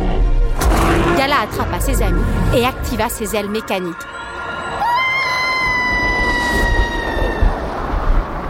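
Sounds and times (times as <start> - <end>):
churning rumbling roar: 0.0 - 3.4, 5.6 - 8.4
speech: 1.2 - 4.2
monster frenzied piercing cry: 4.7 - 7.7.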